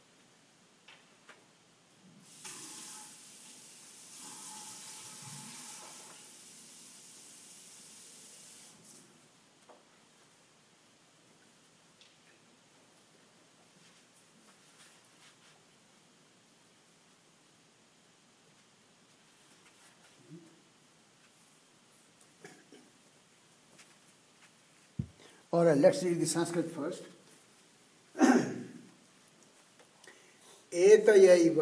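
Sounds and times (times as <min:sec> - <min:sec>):
water running from a tap: 0:02.3 - 0:08.7
speech: 0:25.5 - 0:27.2, 0:30.8 - 0:31.6.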